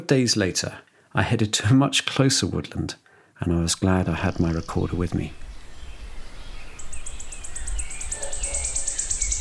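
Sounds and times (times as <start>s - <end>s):
speech: 0.1s - 5.4s
wood warbler singing in woodland: 3.7s - 9.3s.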